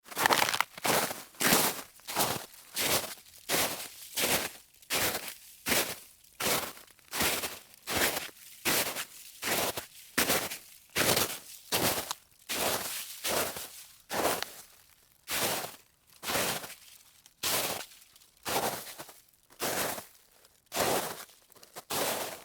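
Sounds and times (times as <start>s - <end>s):
footsteps walking on snow: 0.0s - 14.6s, 15.3s - 16.8s, 17.4s - 17.9s, 18.5s - 20.1s, 20.7s - 22.4s.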